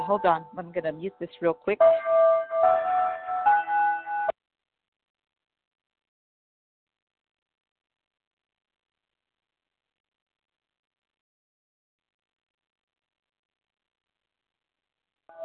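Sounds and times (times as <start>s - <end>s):
speech: 0.1s - 2.9s
bell ringing: 1.8s - 4.3s.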